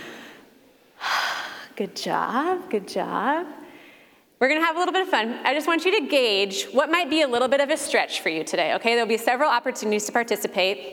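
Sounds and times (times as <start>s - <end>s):
audience at a talk inhaling deeply together: 0.0s - 1.8s, 3.7s - 4.3s
speech: 1.8s - 3.6s, 4.4s - 10.9s.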